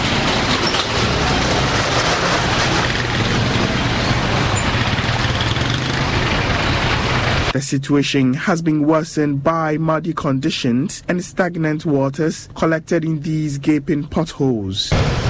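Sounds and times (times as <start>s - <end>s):
diesel engines of big vehicles idling in congested traffic: 0.0s - 7.6s
speech: 7.6s - 15.2s.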